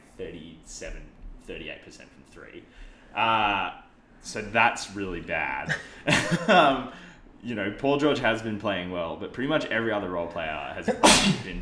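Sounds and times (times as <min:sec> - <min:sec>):
speech: 0:00.2 - 0:11.6
loud sharp sneeze: 0:10.9 - 0:11.5.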